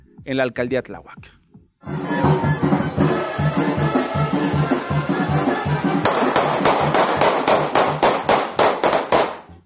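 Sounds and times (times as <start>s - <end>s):
speech: 0.2s - 2.0s
brass band music at a football match: 1.8s - 9.4s
gunfire bursts at a football match: 6.0s - 9.4s.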